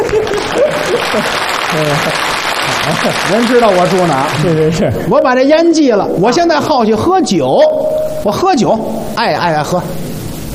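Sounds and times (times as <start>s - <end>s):
audience applause: 0.0s - 5.0s
voices and laughter: 0.0s - 5.1s
speech: 1.1s - 10.0s.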